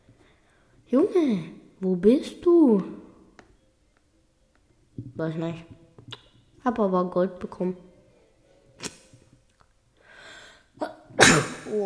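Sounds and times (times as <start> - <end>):
speech: 0.9 - 3.0, 5.2 - 5.8, 6.6 - 7.9, 11.4 - 11.8
harsh coughing fit: 11.2 - 11.7.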